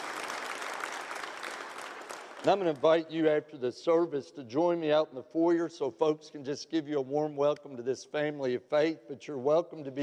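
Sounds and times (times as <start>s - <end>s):
crowd applauding to welcome new members: 0.0s - 2.8s
speech: 2.4s - 10.0s.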